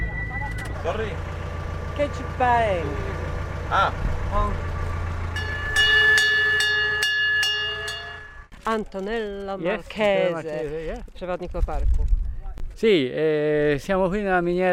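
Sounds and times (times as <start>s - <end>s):
small mine train rumbling with low engine drone: 0.0s - 9.6s
speech: 0.8s - 1.4s, 2.0s - 4.7s, 8.7s - 12.2s, 12.8s - 14.7s
sharp clanks and ringing tones: 4.7s - 9.6s.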